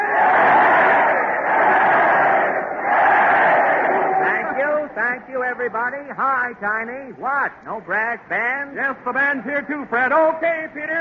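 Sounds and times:
large crowd cheering greeting a train arrival: 0.0s - 4.9s
speech: 5.2s - 10.9s.

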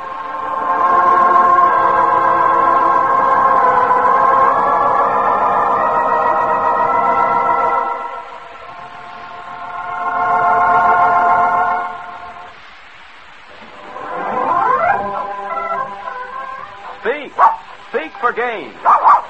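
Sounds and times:
steady droning tones: 0.0s - 19.2s
dog barking in short loud yaps: 16.8s - 17.8s, 18.8s - 19.2s.

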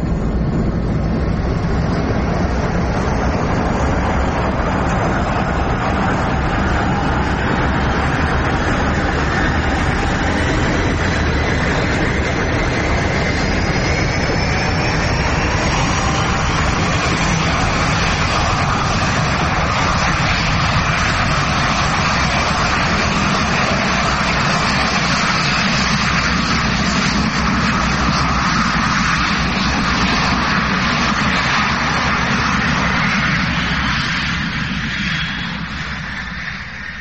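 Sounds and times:
thin jet engine whine climbing in pitch: 0.0s - 23.0s
airliner jet engines roaring during takeoff: 0.0s - 37.0s.

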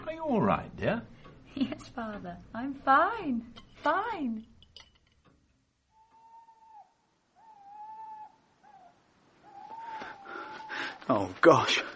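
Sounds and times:
faint hissing background: 0.0s - 11.9s
speech: 0.2s - 4.5s, 10.8s - 11.9s
owl hooting at night: 5.9s - 11.3s.

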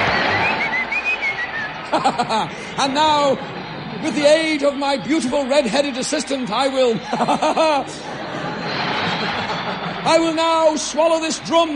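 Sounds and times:
whistling tune: 0.0s - 1.9s
constant noisy background: 0.0s - 11.7s
laughter: 1.8s - 3.0s, 6.6s - 10.9s
speech: 1.9s - 8.2s, 10.0s - 11.7s.

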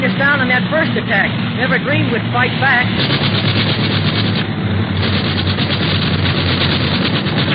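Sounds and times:
rough airplane engine roaring in a nosedive: 0.0s - 7.5s
speech: 0.2s - 3.5s.

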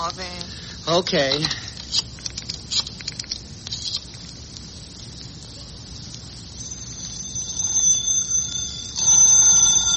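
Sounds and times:
speech: 0.0s - 2.1s
light scratchy patter: 0.0s - 6.4s
telephone with shrill bell ringing: 6.6s - 9.9s.

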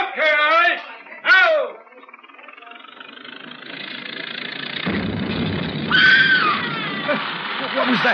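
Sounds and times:
engine rumbling: 0.0s - 8.1s
person screaming: 5.9s - 7.2s.

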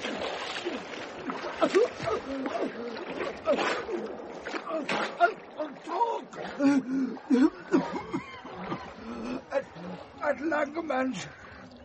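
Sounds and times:
thrashing in water: 0.0s - 6.6s
churning water splashing as a person is dunked under the water: 0.0s - 11.8s
speech: 1.6s - 8.0s, 10.3s - 11.4s.

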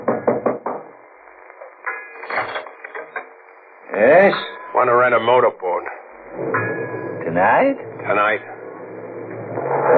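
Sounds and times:
quick firm knocks on a door at a boat landing: 0.0s - 0.9s
speech: 3.9s - 6.7s, 7.4s - 8.6s.

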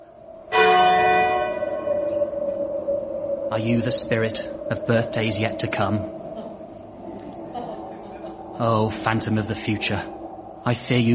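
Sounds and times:
single loud church bell strike ringing one o'clock: 0.5s - 2.6s
speech: 3.5s - 6.2s, 8.6s - 11.1s.

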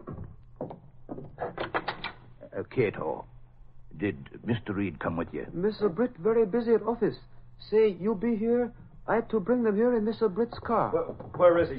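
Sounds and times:
door rattling open: 0.0s - 2.3s
speech: 2.8s - 3.3s, 4.0s - 11.7s.

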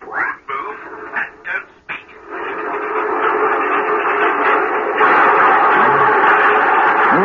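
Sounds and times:
train wheels clattering over rail joints: 2.2s - 7.2s.

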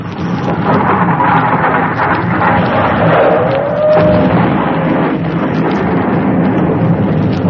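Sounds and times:
loud sustained explosion rumbling and roaring: 0.0s - 7.4s
brief whistling tone: 2.6s - 4.4s.

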